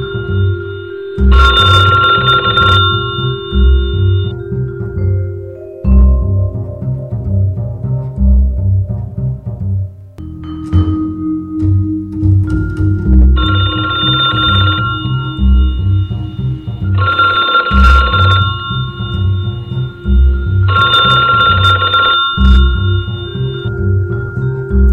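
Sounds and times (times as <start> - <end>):
telephone bell ringing: 0.0 - 4.4, 13.4 - 23.7
steady rhythmic low-pitched musical backing: 0.0 - 24.9.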